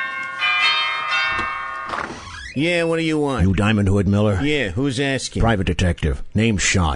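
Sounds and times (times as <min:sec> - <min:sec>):
doorbell chiming: 0:00.0 - 0:02.6
speech: 0:02.6 - 0:06.9.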